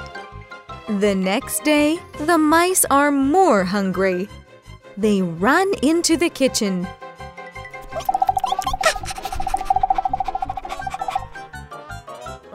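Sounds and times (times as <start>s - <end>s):
speech: 0.9s - 4.4s, 5.0s - 7.0s
steady high warbling tone: 7.8s - 11.4s.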